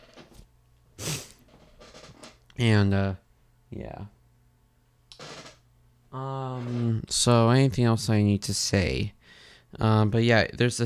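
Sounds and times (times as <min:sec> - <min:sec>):
nasal sniffle: 0:01.0 - 0:01.4
speech: 0:02.6 - 0:04.2, 0:06.1 - 0:10.8.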